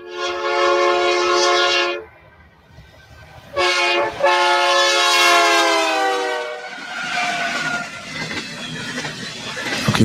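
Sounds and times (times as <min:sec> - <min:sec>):
freight train horn blasts: 0:00.0 - 0:02.1, 0:03.5 - 0:07.6
freight train rumbling past: 0:00.0 - 0:10.0
steady clattering rail noise: 0:00.0 - 0:10.0.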